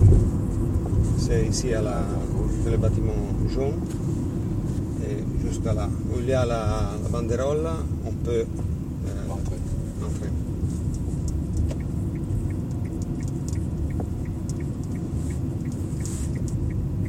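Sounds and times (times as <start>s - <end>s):
car engine rumble while driving: 0.0s - 17.0s
speech: 1.3s - 4.2s, 5.1s - 9.2s
light ticking: 10.8s - 17.0s.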